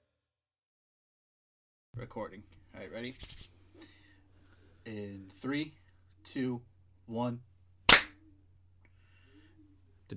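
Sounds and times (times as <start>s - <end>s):
speech: 2.0s - 4.0s, 4.8s - 7.5s
low steady hum: 2.0s - 10.1s
single hand clap to sync a recording: 7.9s - 8.2s.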